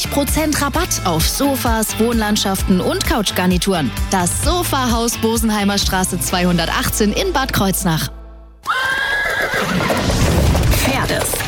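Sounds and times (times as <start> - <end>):
speech: 0.2 - 8.2
horse whinnying: 8.6 - 10.3
hooves clip-clopping: 8.6 - 11.4.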